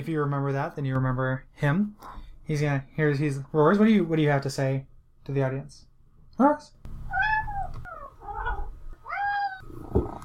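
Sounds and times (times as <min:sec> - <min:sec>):
speech: 0:00.0 - 0:06.8
cat making short rolling chirping trills in a studio: 0:07.1 - 0:09.7.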